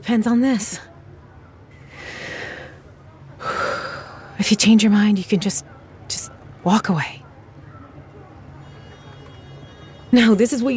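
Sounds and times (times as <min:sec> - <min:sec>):
speech: 0:00.0 - 0:00.9, 0:04.4 - 0:05.8, 0:06.6 - 0:07.2, 0:10.1 - 0:10.7
person taking deep breaths: 0:01.9 - 0:02.8, 0:03.4 - 0:04.4.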